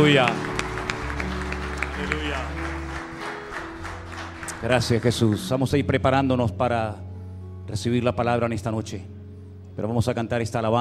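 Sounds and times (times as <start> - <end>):
speech: 0.0 - 0.5, 2.0 - 2.7, 4.6 - 7.0, 7.7 - 9.1, 9.8 - 10.7
crowd applauding at an evening worship service: 0.0 - 5.7.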